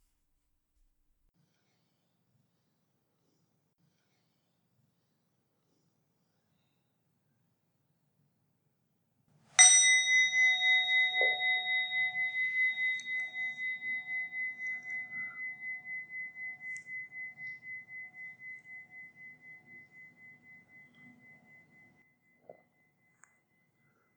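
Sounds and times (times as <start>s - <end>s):
meditation bell struck to start a meditation practice: 9.6s - 24.1s.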